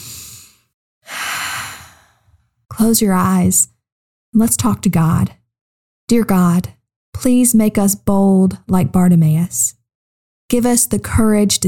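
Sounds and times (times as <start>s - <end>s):
deep breath in and out during a guided calming exercise: 0.0s - 2.4s
speech: 2.8s - 5.4s, 6.1s - 9.8s, 10.5s - 11.6s.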